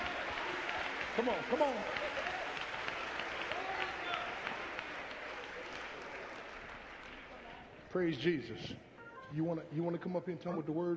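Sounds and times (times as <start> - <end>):
crowd of young adults clapping in praise: 0.0 - 7.8
speech: 1.2 - 2.2, 7.9 - 10.9.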